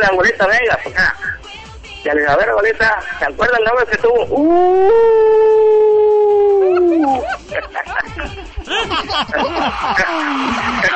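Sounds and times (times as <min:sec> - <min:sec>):
speech: 0:00.0 - 0:05.8, 0:07.6 - 0:10.9
person imitating a howl: 0:04.3 - 0:07.2
excited laughter: 0:06.5 - 0:10.9.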